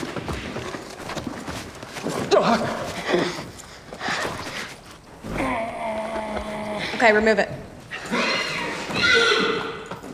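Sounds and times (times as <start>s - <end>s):
speech: 2.4s - 3.4s, 7.0s - 7.6s
horse neighing during manual stimulation for semen collection: 5.2s - 7.2s, 7.9s - 10.0s.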